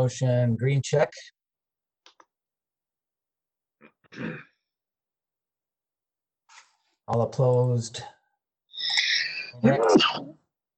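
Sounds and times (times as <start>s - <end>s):
speech: 0.0s - 1.4s, 4.1s - 4.5s, 7.1s - 8.2s, 9.6s - 10.4s
person sneezing: 4.0s - 4.6s, 9.6s - 10.4s.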